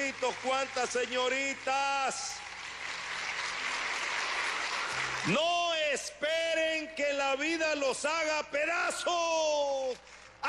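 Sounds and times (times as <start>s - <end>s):
audience applause at a religious gathering: 0.0s - 5.5s
speech: 0.1s - 2.5s, 5.2s - 10.4s.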